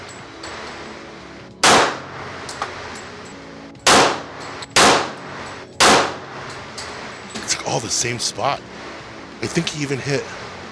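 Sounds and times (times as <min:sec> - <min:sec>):
gunshots at a shooting range: 0:01.6 - 0:02.1, 0:03.9 - 0:05.2, 0:05.8 - 0:06.3
speech: 0:07.7 - 0:10.4.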